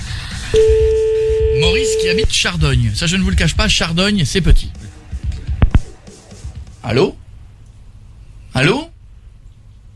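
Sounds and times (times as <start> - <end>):
telephone call signal: 0.6 - 2.3
low rhythmic sound: 0.6 - 7.8
speech: 2.0 - 4.8, 6.8 - 7.2, 8.5 - 8.9.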